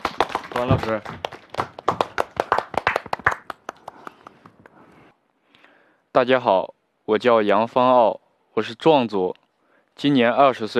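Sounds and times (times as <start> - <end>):
applause welcoming a young male dance student: 0.0 - 4.6
speech: 0.6 - 1.7, 6.2 - 9.4, 10.0 - 10.7.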